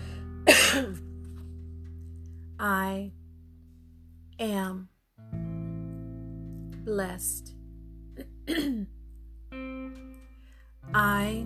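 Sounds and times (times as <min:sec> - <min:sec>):
throat-clearing cough from a tickle in the throat: 0:00.5 - 0:01.0, 0:08.5 - 0:08.9
speech: 0:02.6 - 0:03.2, 0:04.4 - 0:04.9, 0:06.8 - 0:07.6, 0:08.5 - 0:09.0, 0:10.9 - 0:11.4.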